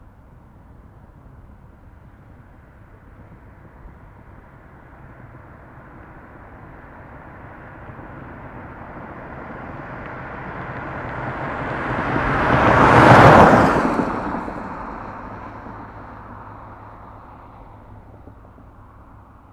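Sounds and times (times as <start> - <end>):
car passing by fast in the desert: 5.8 - 19.3.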